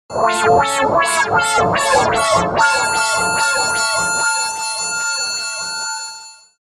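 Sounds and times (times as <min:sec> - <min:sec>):
guitar through resonant wah and harmonizer effects: 0:00.1 - 0:05.4.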